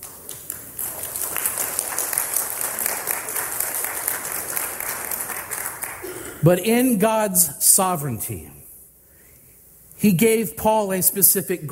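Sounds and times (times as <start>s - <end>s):
room full of people applauding: 0.0s - 6.2s
speech: 6.4s - 8.6s, 10.0s - 11.7s.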